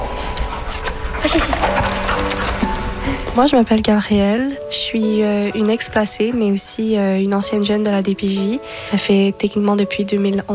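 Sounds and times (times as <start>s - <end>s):
dog paws tapping and scuffling: 0.4s - 7.9s
speech: 1.2s - 1.8s, 3.4s - 10.5s.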